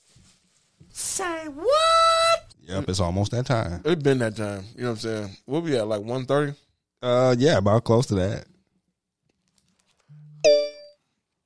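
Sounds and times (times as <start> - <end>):
speech: 1.0 - 1.9, 2.7 - 8.5
phone notification alert with buzzing tone and ringing chime: 10.4 - 11.0.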